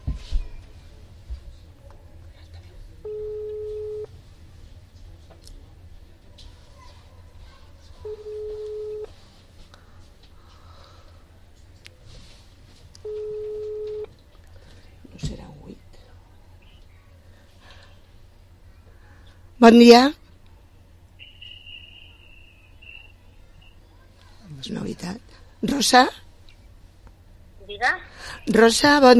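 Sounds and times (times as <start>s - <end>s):
low constant hum: 0.0s - 29.1s
telephone ringback tone while a call waits to be answered: 3.1s - 4.1s, 8.1s - 9.1s, 13.0s - 14.1s
speech: 19.6s - 20.2s, 25.8s - 26.2s, 28.6s - 29.1s.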